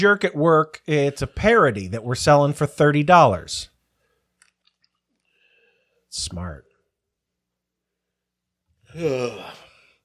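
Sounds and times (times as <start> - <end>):
speech: 0.0 - 3.7, 6.1 - 6.7, 8.9 - 9.6
person yawning: 8.9 - 10.0.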